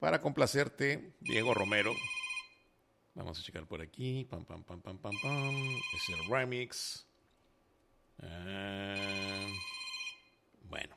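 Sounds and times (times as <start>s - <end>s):
speech: 0.0s - 2.2s, 3.2s - 7.1s, 8.2s - 9.7s, 10.6s - 10.9s
telephone ringing during a radio show: 1.2s - 2.7s, 5.1s - 6.5s, 9.0s - 10.4s.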